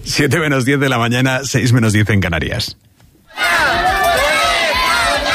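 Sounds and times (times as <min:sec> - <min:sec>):
speech: 0:00.2 - 0:03.8
crowd of parents shouting a protest chant in Dueñas: 0:03.3 - 0:05.3.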